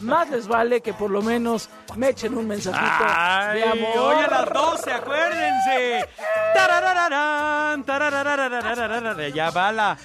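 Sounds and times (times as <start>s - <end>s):
speech: 0.0s - 10.0s
person imitating a sheep or goat bleating: 2.8s - 6.0s.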